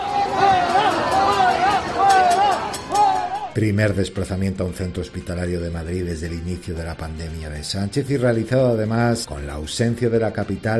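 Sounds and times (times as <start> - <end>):
dense outdoor protest crowd shouting and booing at a hospital: 0.0 - 3.6
protest crowd voices jeering: 0.0 - 3.6
speech: 3.6 - 10.7.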